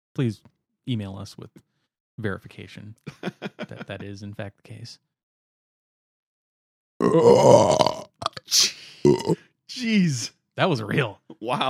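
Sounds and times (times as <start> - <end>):
speech: 0.2 - 5.1, 7.0 - 11.6
laughter: 3.1 - 4.2
loud long burp: 7.0 - 8.4, 9.0 - 9.4.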